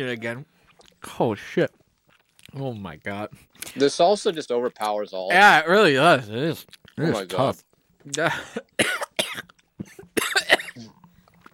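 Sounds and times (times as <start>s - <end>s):
speech: 0.0s - 1.8s, 2.5s - 9.5s
person coughing after eating a salsa jelly bean: 8.3s - 10.9s.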